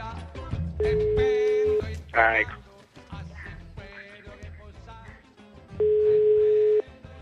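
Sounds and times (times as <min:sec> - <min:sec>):
busy music bed: 0:00.0 - 0:07.2
telephone ringing tone while calling back: 0:00.8 - 0:01.9, 0:05.8 - 0:06.9
speech: 0:02.2 - 0:02.6.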